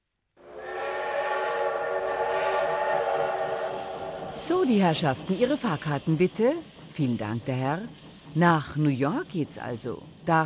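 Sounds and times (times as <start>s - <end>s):
train whistle blast: 0.4s - 4.5s
low rumble of the moving train: 0.4s - 10.4s
speech: 4.4s - 10.4s.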